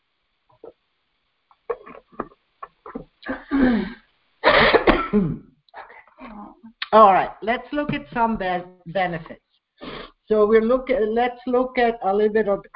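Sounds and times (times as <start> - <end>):
man coughing because of a dry throat: 1.7 - 5.4
man clearing his dry throat: 1.7 - 5.5
speech: 3.3 - 4.0, 5.1 - 5.5, 6.9 - 9.4, 10.3 - 12.7.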